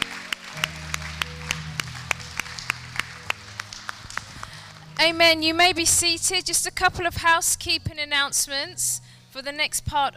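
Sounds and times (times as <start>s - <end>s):
audience clapping after a prayer: 0.0s - 5.0s
speech: 5.0s - 10.1s.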